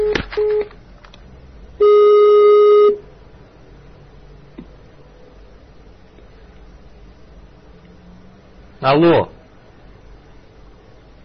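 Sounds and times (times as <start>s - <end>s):
loud steady telephone tone: 1.8s - 3.0s
speech: 8.8s - 9.4s.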